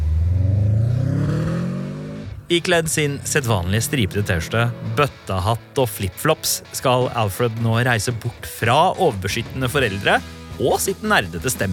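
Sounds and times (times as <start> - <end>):
car engine revving as the car drives away: 0.0 - 6.7
speech: 2.5 - 11.7.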